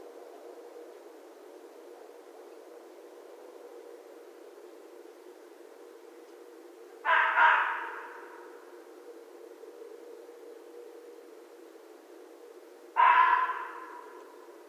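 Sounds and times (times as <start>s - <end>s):
red fox barking: 7.0s - 8.6s, 13.0s - 14.4s.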